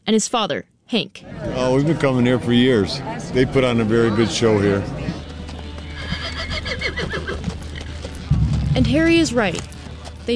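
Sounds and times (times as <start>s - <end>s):
speech: 0.1s - 5.0s, 8.8s - 9.7s
faint hoof clopping: 4.8s - 10.3s
horse whinnying: 5.9s - 8.0s
steady low hum: 8.2s - 10.3s.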